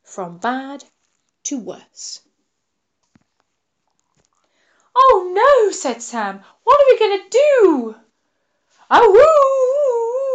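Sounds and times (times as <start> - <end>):
speech: 0.2 - 2.3, 5.0 - 8.0, 8.9 - 9.7
human voice imitating a dog howling: 8.9 - 10.3.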